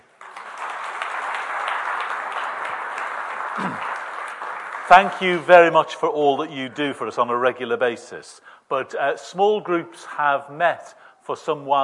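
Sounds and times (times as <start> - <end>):
audience applauding: 0.0 - 5.9
speech: 4.9 - 11.8.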